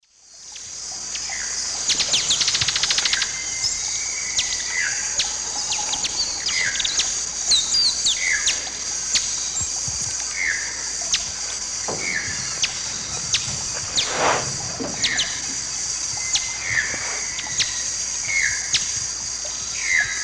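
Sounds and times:
Topaza pyra feeding calls in the Eastern Lowlands of South America: 1.1s - 20.2s.

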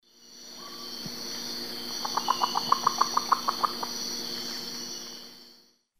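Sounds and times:
Nyctibius aethereus flight calls playback in the Eastern Lowlands of South America: 1.8s - 4.6s.

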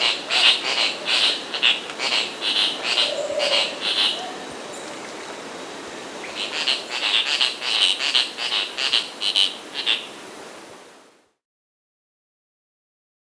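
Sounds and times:
masked tityra Tityra semifasciata buzzy nasal calls in South America: 0.0s - 10.3s
steady hiss: 0.0s - 11.4s.

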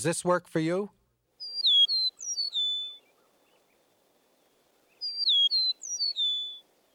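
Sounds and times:
speech: 0.0s - 1.0s
eastern meadowlark singing: 1.4s - 3.1s, 5.0s - 6.7s.

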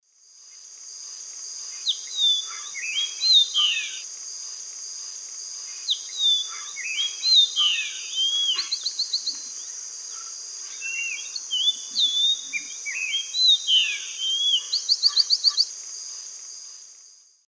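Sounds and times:
Icterus chrysocephalus song in South American eastern lowlands: 1.7s - 4.0s, 5.6s - 15.8s.

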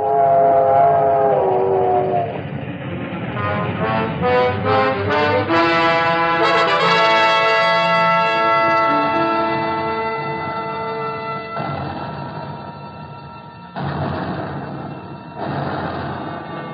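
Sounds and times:
ammunition train whistle tones: 0.0s - 2.5s, 3.3s - 13.8s
ammunition train rumbling along rails: 0.0s - 16.7s.

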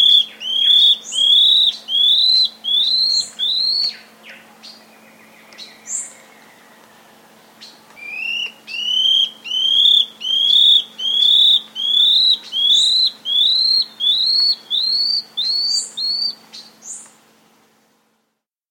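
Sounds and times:
scale-backed antbird whistling: 0.0s - 4.1s, 8.0s - 17.0s.

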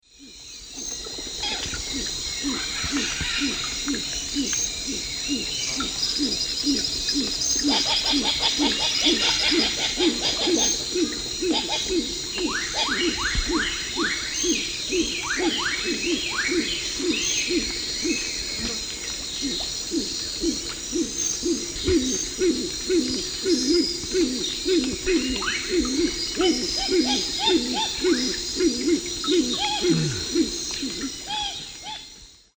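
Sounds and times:
Anhima cornuta calls played back, Eastern Lowlands of South America: 0.4s - 32.2s.

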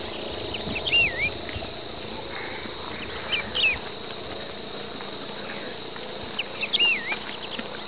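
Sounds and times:
Wedge-tailed Grass-Finch calling in Ecuador: 0.0s - 1.6s, 2.3s - 4.0s, 6.3s - 7.8s
constant insect hum in Ecuador: 0.0s - 7.8s.

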